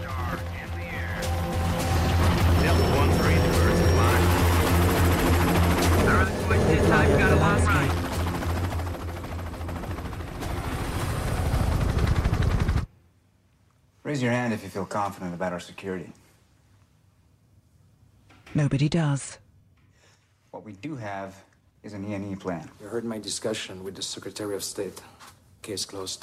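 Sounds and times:
several helicopters lifting off together: 0.0 - 12.9
speech: 14.2 - 16.2, 18.5 - 19.4, 20.6 - 26.2.

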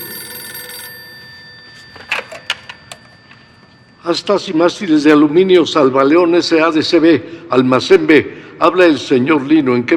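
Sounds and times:
telephone bell ringing: 0.0 - 5.4
speech: 4.0 - 9.9.

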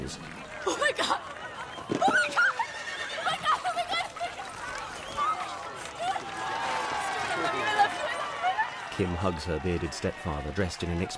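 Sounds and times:
murmur of an outdoor crowd: 0.0 - 11.1
speech: 0.1 - 1.2, 9.0 - 11.1
racehorse whinnying: 2.0 - 3.7.

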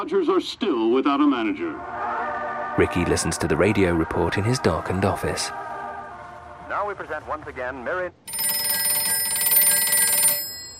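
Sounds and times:
speech: 0.0 - 2.1, 2.8 - 5.7, 6.7 - 8.4
telephone bell ringing: 8.3 - 10.7.

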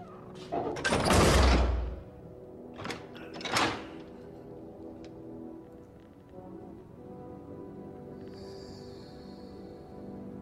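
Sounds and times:
heavy metal prison cell door sliding shut with a rumbling clang: 0.5 - 2.0, 2.8 - 4.0.

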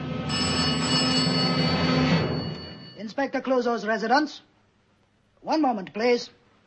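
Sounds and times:
telephone ringing with a warbling trilling tone: 0.3 - 3.1
speech: 3.2 - 4.5, 5.4 - 6.4.

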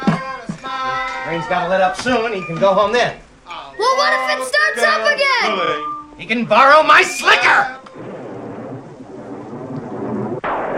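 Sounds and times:
speech: 1.3 - 3.2, 3.8 - 8.1
heavy pouring rain: 7.9 - 10.7
sharp thunder crack: 7.9 - 10.7.

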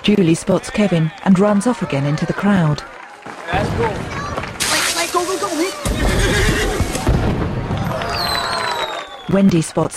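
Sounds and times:
speech: 0.1 - 4.2, 9.3 - 9.9
firecrackers going off beside a tethered horse at a crowded event: 3.2 - 9.2
tethered horse whinnying: 5.8 - 6.9.

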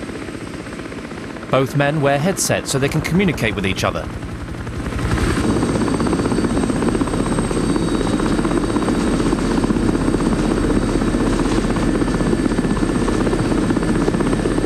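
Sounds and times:
helicopter rotor thumping over snow-covered mountains: 0.0 - 14.6
speech: 1.5 - 4.3.

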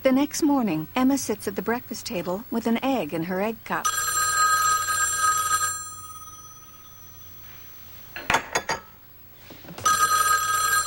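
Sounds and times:
speech: 0.1 - 4.1
old-fashioned telephone bell ringing: 3.8 - 8.0, 9.8 - 10.8
clinks and knocks: 8.2 - 9.0.

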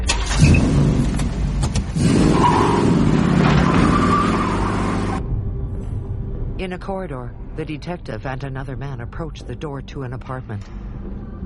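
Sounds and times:
car driving off with engine rumble and road noise: 0.1 - 5.2
speech: 6.6 - 11.2.

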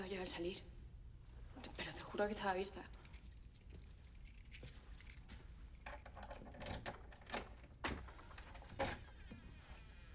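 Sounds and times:
speech: 0.1 - 0.7, 1.6 - 3.0
keys unlocking an apartment door: 2.9 - 7.7.

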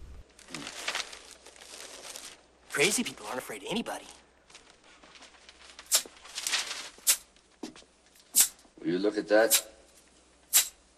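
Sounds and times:
newspaper being lifted and rustled: 0.3 - 8.2
speech: 2.8 - 4.2, 8.8 - 9.7.

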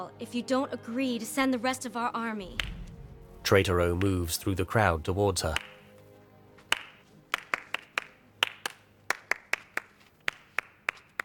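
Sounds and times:
speech: 0.0 - 2.8, 3.5 - 5.7
sharp hand claps: 5.5 - 5.8, 6.7 - 11.2.

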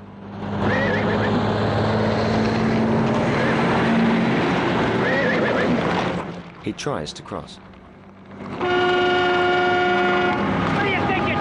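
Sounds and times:
traffic whipping past on a busy highway through steep mountains: 0.0 - 11.3
horse whinnying: 5.0 - 5.8
speech: 6.7 - 7.7.

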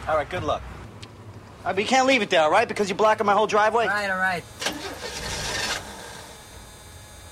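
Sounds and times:
speech: 0.1 - 0.7, 1.6 - 4.9
car engine cranking but failing to start: 4.4 - 6.5.

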